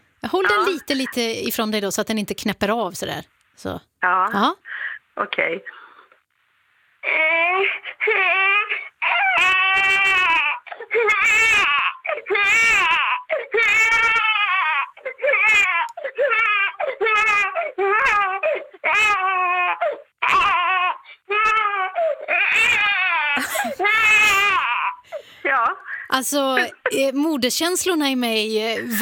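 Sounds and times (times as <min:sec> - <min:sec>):
speech: 0:00.3 - 0:05.8, 0:07.0 - 0:08.8, 0:10.9 - 0:14.2, 0:26.1 - 0:28.9
voice imitating a crying baby: 0:08.2 - 0:25.0.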